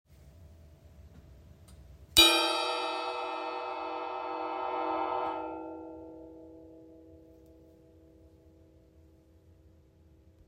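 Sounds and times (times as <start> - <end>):
plate bell being struck: 2.2 - 8.2.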